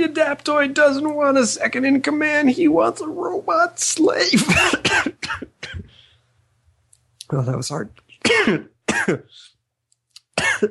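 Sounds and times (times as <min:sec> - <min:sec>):
speech: 0:00.1 - 0:05.5, 0:07.3 - 0:09.5, 0:10.4 - 0:10.6
person clearing throat: 0:04.4 - 0:05.9, 0:08.3 - 0:09.3, 0:10.4 - 0:10.6
person coughing: 0:04.4 - 0:06.0, 0:08.2 - 0:09.3, 0:10.4 - 0:10.6.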